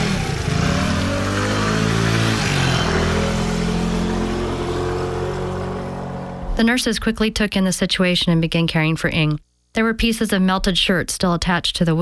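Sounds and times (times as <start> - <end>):
motorbike engine revving and pulling away carrying three people: 0.0 - 6.6
speech: 6.6 - 12.0.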